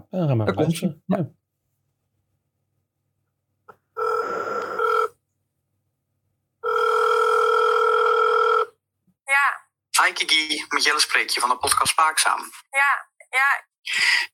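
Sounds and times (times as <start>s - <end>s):
speech: 0.1s - 1.4s, 10.7s - 14.3s
buzzy ringback tones of outgoing phone call through earpiece: 4.0s - 5.2s, 6.6s - 8.8s.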